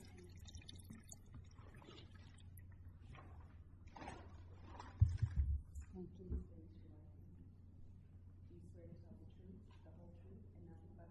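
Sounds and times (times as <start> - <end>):
water poured into a glass: 0.0 - 2.7
low room hum: 0.0 - 11.1.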